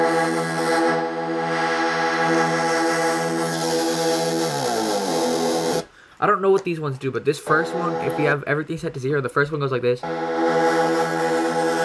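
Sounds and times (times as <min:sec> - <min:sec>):
buzzy heavily distorted synth tone with pitch bend: 0:00.1 - 0:05.8, 0:07.5 - 0:08.5, 0:10.0 - 0:11.8
speech: 0:06.2 - 0:10.4.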